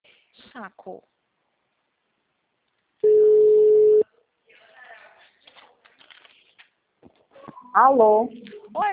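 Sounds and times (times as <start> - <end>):
speech: 0.6 - 1.2, 7.7 - 8.9
telephone line tone after a dropped call: 3.0 - 4.0.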